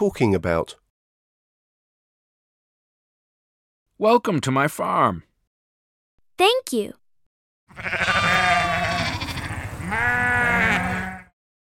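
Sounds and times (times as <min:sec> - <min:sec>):
speech: 0:00.0 - 0:00.8, 0:04.0 - 0:05.3, 0:06.4 - 0:07.0, 0:07.7 - 0:08.1
sheep on a farm bleating: 0:07.7 - 0:11.4.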